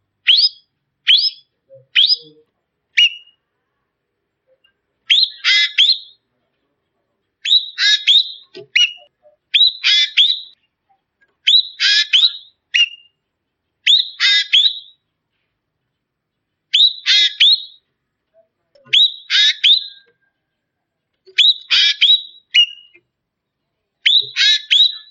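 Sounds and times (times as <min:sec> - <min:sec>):
Ekek bird calling: 0:00.2 - 0:03.4, 0:04.6 - 0:06.2, 0:07.4 - 0:10.7, 0:11.4 - 0:15.2, 0:16.7 - 0:17.9, 0:18.8 - 0:20.6, 0:21.3 - 0:23.0, 0:24.0 - 0:25.0.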